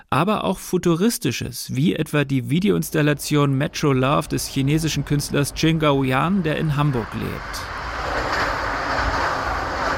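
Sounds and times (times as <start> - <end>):
speech: 0.1 - 7.8
subway train ride in Hamburg: 2.6 - 9.9.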